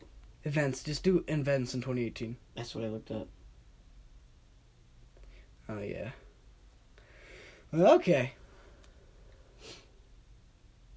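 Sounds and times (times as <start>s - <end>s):
low hum: 0.0s - 10.9s
speech: 0.4s - 3.4s, 5.7s - 6.2s, 7.7s - 8.4s
short breathy sniff close to the microphone: 9.5s - 10.0s.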